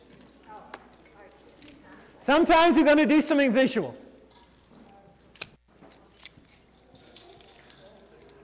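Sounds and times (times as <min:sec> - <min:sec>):
crowd jangling many sets of keys: 0:00.0 - 0:02.2, 0:04.2 - 0:08.4
speech: 0:02.3 - 0:04.0.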